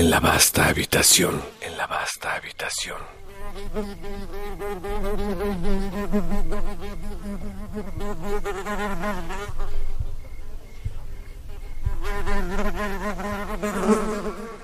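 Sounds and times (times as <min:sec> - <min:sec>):
speech: 0:00.0 - 0:09.9, 0:12.0 - 0:14.6
housefly buzzing in flight: 0:03.0 - 0:10.1, 0:11.3 - 0:14.6.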